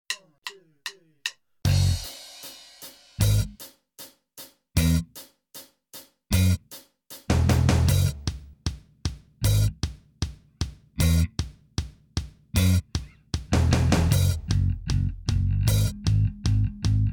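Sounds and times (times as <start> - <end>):
bass track: 1.7 - 2.1, 3.2 - 3.6, 4.8 - 5.1, 6.3 - 6.6, 7.3 - 8.4, 9.4 - 9.8, 11.0 - 11.4, 12.6 - 17.1.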